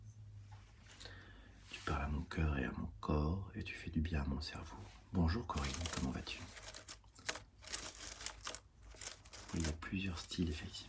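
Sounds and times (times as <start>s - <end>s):
speech: 2.0s - 6.8s, 9.6s - 10.8s
crinkling and crunching of dry leaves or paper sheets for ASMR: 5.3s - 10.8s.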